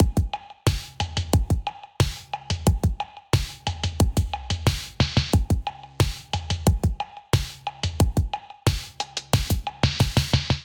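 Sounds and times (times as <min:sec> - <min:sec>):
drum beat: 0:00.0 - 0:10.6.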